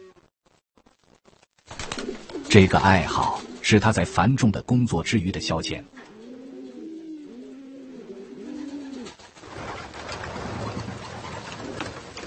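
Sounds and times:
homing pigeons cooing: 1.9 - 4.2, 5.7 - 12.2
speech: 2.5 - 6.1.

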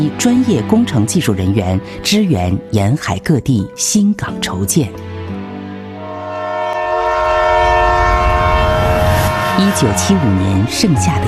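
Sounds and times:
speech: 0.0 - 5.1, 9.6 - 11.2
passenger train sustained chord-like horn: 5.8 - 11.2.

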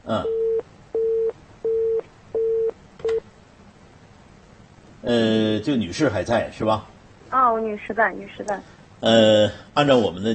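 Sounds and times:
speech: 0.1 - 0.4, 5.1 - 10.3
telephone busy tone after a dropped call: 0.2 - 3.2.

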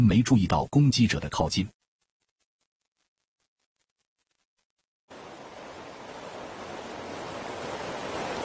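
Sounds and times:
speech: 0.0 - 1.8
rushing water of a small waterfall: 5.1 - 8.4.

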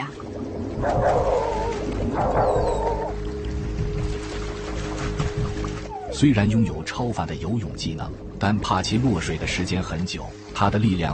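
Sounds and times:
water or wind noise: 0.0 - 11.1
speech: 0.8 - 1.4, 6.2 - 11.1
dog barking loudly to call people for help: 2.2 - 2.6.

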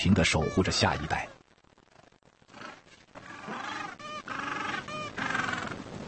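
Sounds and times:
Gentoo penguin colony calling: 0.0 - 1.4, 2.5 - 5.8
speech: 0.0 - 1.4.

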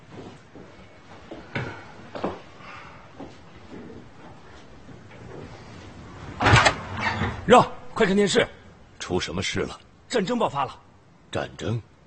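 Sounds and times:
door closing: 6.2 - 7.7
door bang: 6.4 - 7.6
speech: 7.5 - 11.9.

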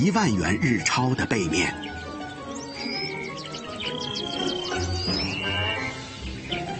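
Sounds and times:
speech: 0.0 - 2.0
dense natural ambience: 0.0 - 6.7
male Jackson's widowbird calling with high chirps and rising whistles: 1.5 - 6.7.

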